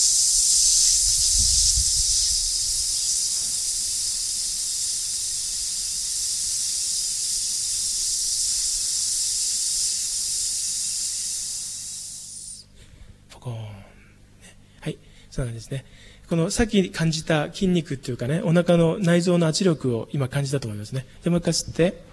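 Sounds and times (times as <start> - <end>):
forceful hissing exhale during a breathing exercise: 0.0 - 12.8
speech: 15.4 - 22.1.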